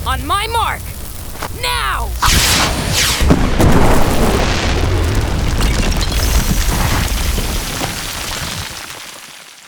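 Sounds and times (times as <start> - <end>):
speech: 0.1 - 1.0, 1.6 - 4.5
booming explosion of homemade firework rockets blowing up a roof: 2.1 - 8.6.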